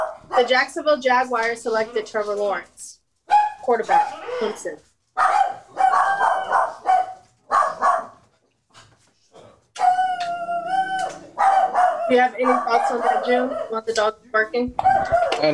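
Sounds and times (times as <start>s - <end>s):
dogs barking: 0.0s - 0.7s, 3.3s - 8.3s, 9.8s - 14.2s, 14.8s - 15.5s
speech: 0.4s - 5.3s, 12.1s - 15.5s.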